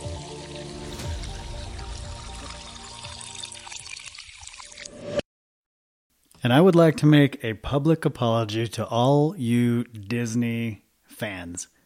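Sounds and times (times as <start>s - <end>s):
mimosa being poured into a glass: 0.0s - 5.2s
speech: 6.4s - 11.8s.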